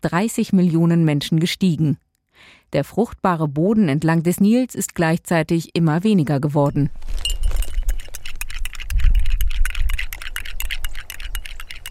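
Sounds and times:
speech: 0:00.0 - 0:07.6
spoon clinking against a small glass of tea while stirring in sugar: 0:06.7 - 0:11.8.

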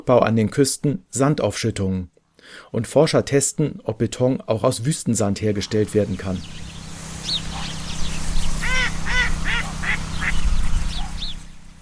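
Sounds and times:
speech: 0:00.0 - 0:06.7
waterbirds calling in a bird sanctuary in the Ebro Delta: 0:05.5 - 0:11.7
steady low rumble: 0:05.6 - 0:11.7
ducks quacking in a bird sanctuary in the Ebro Delta: 0:06.0 - 0:11.5.

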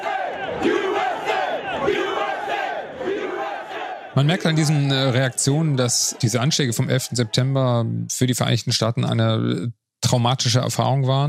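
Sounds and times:
large crowd chanting in unison outdoors in the streets: 0:00.0 - 0:08.1
speech: 0:04.2 - 0:11.2.

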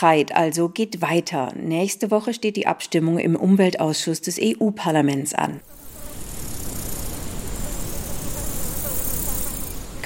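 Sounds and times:
speech: 0:00.0 - 0:05.8
high chirping of insects in a meadow: 0:05.6 - 0:10.0
insects buzzing in a meadow: 0:05.6 - 0:10.0.

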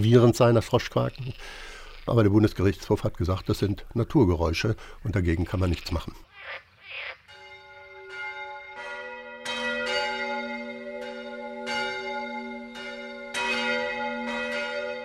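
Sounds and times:
speech: 0:00.0 - 0:07.2
church bells pealing: 0:07.3 - 0:15.0.

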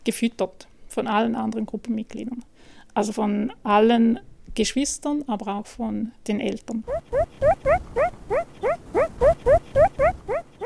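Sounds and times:
speech: 0:00.0 - 0:10.1
hungry five-week-old meerkat pup begging calls: 0:06.9 - 0:10.6.

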